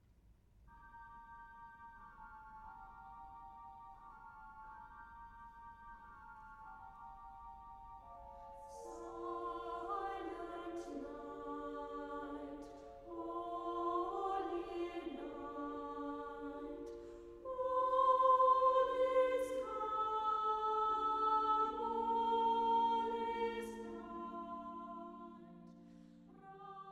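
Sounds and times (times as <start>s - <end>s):
church choir singing a Christmas carol: 8.0s - 26.9s.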